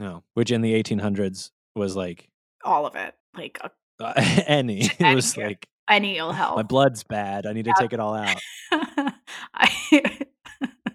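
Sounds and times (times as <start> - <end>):
speech: 0.0 - 10.8
laughter: 4.0 - 5.6, 6.3 - 10.9
person hacking coughs: 4.1 - 5.5.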